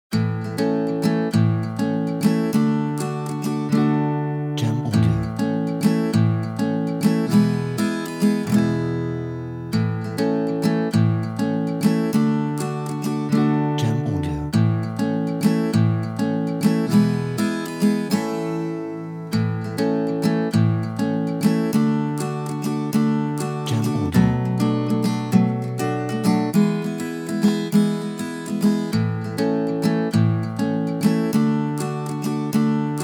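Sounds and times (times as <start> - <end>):
upbeat guitar background music: 0.1 - 33.0.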